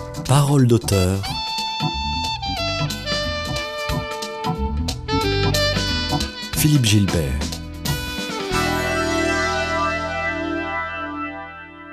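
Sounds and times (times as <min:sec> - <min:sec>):
instrumental music with textured intro and effects-heavy chord: 0:00.0 - 0:11.9
speech: 0:00.3 - 0:02.0, 0:06.6 - 0:07.5
sustained effects-heavy chord: 0:08.3 - 0:11.9.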